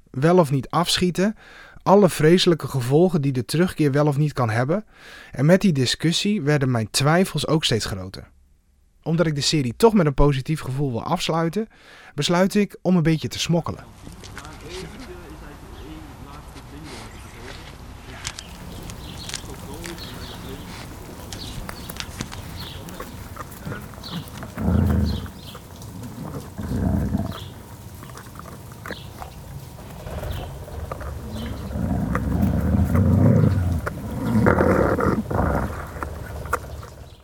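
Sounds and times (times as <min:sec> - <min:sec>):
speech: 0:00.2 - 0:08.4, 0:09.0 - 0:15.0
wolf sniffing against the microphone: 0:16.3 - 0:37.2.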